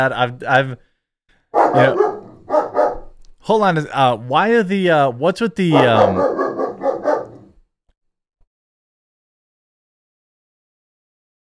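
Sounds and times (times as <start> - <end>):
speech: 0.0 - 0.9, 1.7 - 2.1, 3.4 - 6.4
puppy barking: 1.6 - 3.2, 5.7 - 7.5.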